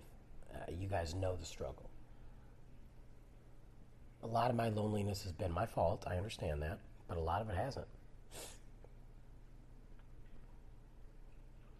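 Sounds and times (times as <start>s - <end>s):
room hum: 0.0s - 11.7s
speech: 0.7s - 2.0s, 4.2s - 8.6s
nasal sniff from allergies: 8.3s - 8.7s.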